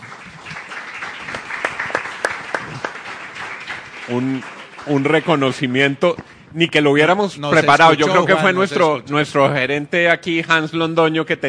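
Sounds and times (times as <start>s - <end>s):
audience applause: 0.0s - 5.7s
speech: 4.1s - 11.4s.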